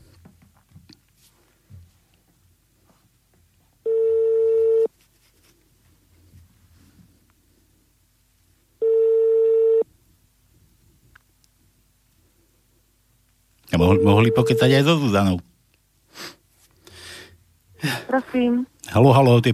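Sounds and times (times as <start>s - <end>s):
faint low noise: 0.0s - 19.5s
telephone ring tones on the line: 3.9s - 4.9s, 8.8s - 9.8s, 13.8s - 14.8s
speech: 13.8s - 15.5s, 18.3s - 19.5s.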